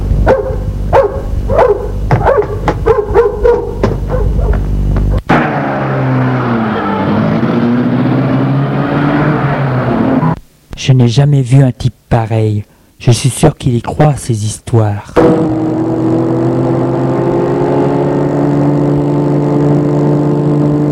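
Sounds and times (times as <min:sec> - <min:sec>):
dog barking: 0:00.2 - 0:05.2
car engine starting and rumbling: 0:02.3 - 0:10.4, 0:15.2 - 0:20.8
speech: 0:11.0 - 0:15.9.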